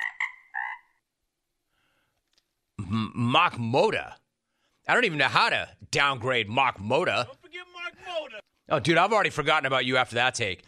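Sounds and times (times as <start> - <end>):
frog croaking: 0.0 - 1.0
speech: 2.9 - 4.2, 4.9 - 7.4, 8.3 - 10.6.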